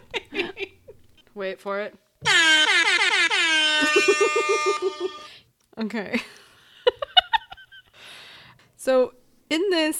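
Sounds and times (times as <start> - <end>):
speech: 1.4 - 3.0, 3.8 - 6.4, 8.8 - 9.9
air horn blast: 2.2 - 5.4.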